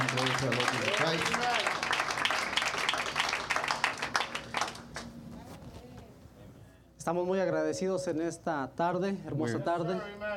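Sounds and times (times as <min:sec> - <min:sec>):
congregation applauding: 0:00.0 - 0:05.1
speech: 0:07.1 - 0:10.3.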